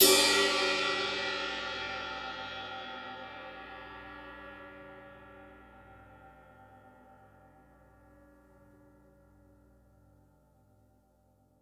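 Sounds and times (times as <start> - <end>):
multiple crash cymbals: 0.0 - 7.4.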